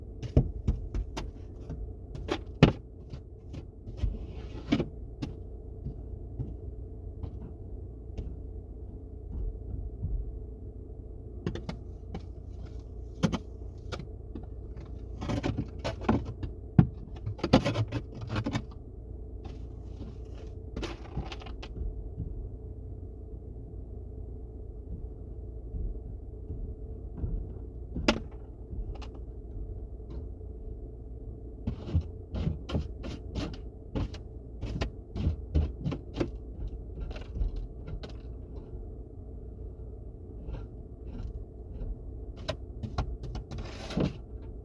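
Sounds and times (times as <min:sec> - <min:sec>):
car driving with steady low engine and road rumble: 0:00.0 - 0:44.6
sharp clicks and knocks inside the car cabin: 0:00.1 - 0:10.4, 0:11.4 - 0:18.8, 0:19.4 - 0:22.6, 0:24.8 - 0:30.4, 0:31.6 - 0:39.0, 0:40.4 - 0:44.6.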